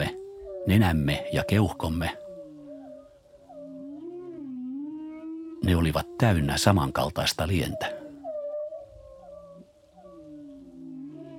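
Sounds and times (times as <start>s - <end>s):
whale calls: 0.0s - 11.3s
speech: 0.7s - 2.2s, 5.6s - 8.0s.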